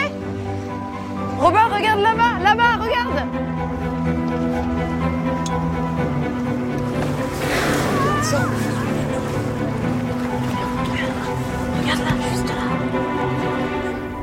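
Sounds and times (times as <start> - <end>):
boat engine droning on the open sea: 0.1 - 14.2
speech: 1.4 - 5.0
wind and sea rushing: 6.4 - 14.2
surge of sea spray: 7.3 - 9.1.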